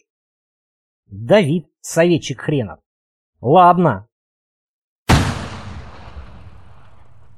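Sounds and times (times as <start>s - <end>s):
speech: 1.1s - 2.8s, 3.4s - 4.1s
rifle shot: 5.1s - 7.3s.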